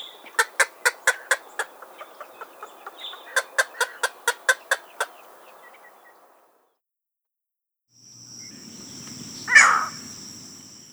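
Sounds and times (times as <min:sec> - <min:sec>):
green heron clucking kuk calls: 0:00.0 - 0:06.2.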